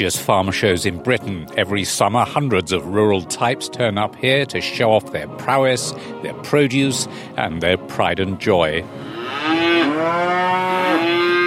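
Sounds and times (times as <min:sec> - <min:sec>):
speech: 0:00.0 - 0:10.4
cattle mooing in a cattle tent at a farm show: 0:09.0 - 0:11.4.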